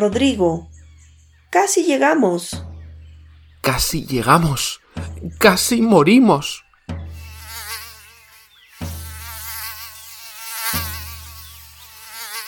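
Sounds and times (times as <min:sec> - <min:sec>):
speech: 0:00.0 - 0:00.7, 0:01.5 - 0:02.7, 0:03.6 - 0:06.6
dull low thumps: 0:00.0 - 0:01.5, 0:02.5 - 0:07.4
mosquitoes buzzing with high wavering whine: 0:03.7 - 0:12.4.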